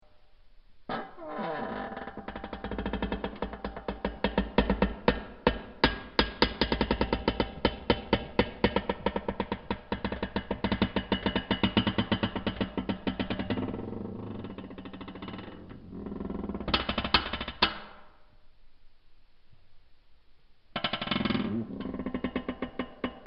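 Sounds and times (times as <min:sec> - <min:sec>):
giant metal creak: 0:00.9 - 0:17.7, 0:20.8 - 0:23.2.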